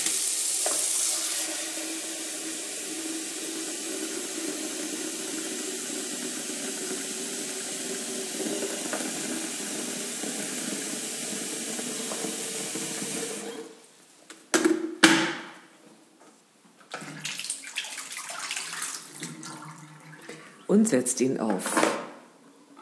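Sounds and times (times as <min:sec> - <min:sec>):
water streaming from a tap into a kettle in a sink: 0:00.0 - 0:13.8, 0:16.9 - 0:20.7
speech: 0:20.7 - 0:22.0.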